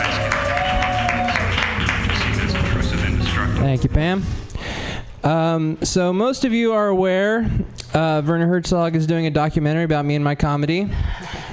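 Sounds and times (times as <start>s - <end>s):
audience clapping loudly: 0.0s - 3.6s
speech: 3.7s - 4.5s, 5.2s - 11.2s.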